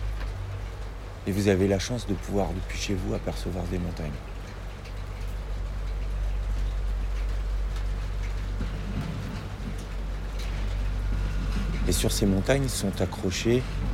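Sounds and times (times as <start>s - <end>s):
constant broadband hiss: 0.0s - 13.9s
low rumbling city traffic passing: 0.0s - 13.9s
speech: 1.2s - 4.3s, 11.9s - 13.9s.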